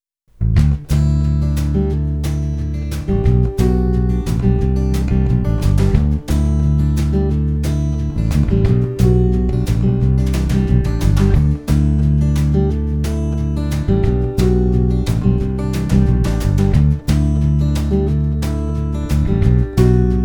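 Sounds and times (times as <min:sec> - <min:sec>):
country music basses: 0:00.4 - 0:20.2.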